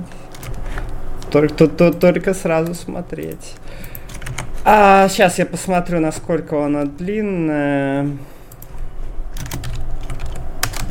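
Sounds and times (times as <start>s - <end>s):
low hum: 0.0s - 10.8s
speech: 1.3s - 3.9s, 4.6s - 8.4s
typing on a computer keyboard: 3.2s - 4.5s, 9.4s - 10.8s.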